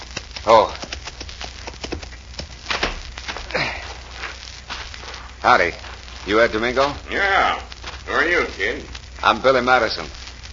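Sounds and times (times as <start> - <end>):
horse hooves of a rider approaching a ranch house: 0.0 - 3.4
speech: 0.4 - 0.8, 5.5 - 10.2.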